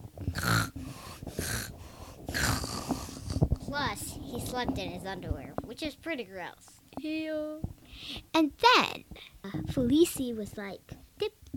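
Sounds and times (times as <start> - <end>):
voice imitating loud rasping snoring: 0.3 - 3.7
speech: 4.4 - 11.5.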